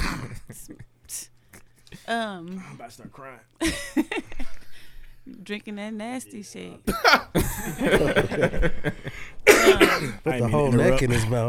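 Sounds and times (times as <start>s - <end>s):
man clearing his throat: 0.0s - 0.6s, 9.4s - 10.2s
man coughing harshly: 0.0s - 0.9s, 6.9s - 8.3s, 9.4s - 10.3s
speech: 2.1s - 4.3s, 5.2s - 11.4s
laughter: 3.6s - 4.8s, 6.9s - 9.4s.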